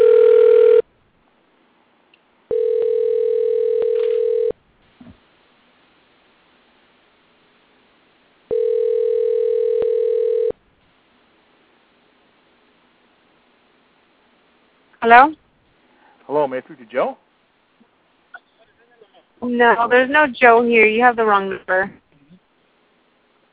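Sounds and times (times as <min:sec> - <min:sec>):
telephone line tone after a number is dialed: 0:00.0 - 0:00.9, 0:02.5 - 0:04.6, 0:08.5 - 0:10.6
faint click: 0:02.1 - 0:02.3
speech: 0:15.0 - 0:15.4, 0:16.3 - 0:17.2, 0:19.4 - 0:22.0.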